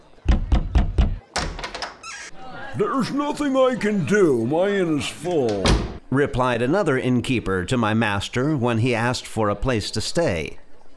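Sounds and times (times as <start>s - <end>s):
inn door being closed with heavy thuds: 0.2s - 2.1s, 5.5s - 6.0s
inn door rattling thud: 0.2s - 2.3s, 5.6s - 6.0s
speech: 2.8s - 10.6s.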